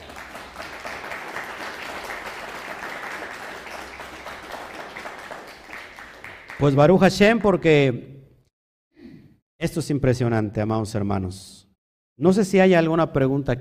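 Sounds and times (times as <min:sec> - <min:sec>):
audience applause: 0:00.0 - 0:07.0
speech: 0:06.6 - 0:08.1, 0:09.6 - 0:11.6, 0:12.2 - 0:13.6.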